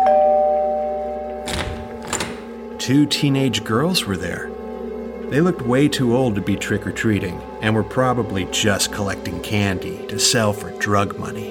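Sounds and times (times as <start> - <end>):
house doorbell electronic chime: 0.0 - 1.9
speech: 2.9 - 4.6, 5.3 - 11.4.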